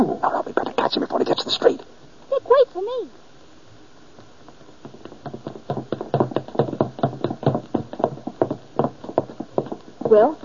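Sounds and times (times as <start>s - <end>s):
speech: 0.9s - 3.3s, 10.1s - 10.4s
man's rapid footsteps running down a wooden staircase: 4.8s - 10.2s.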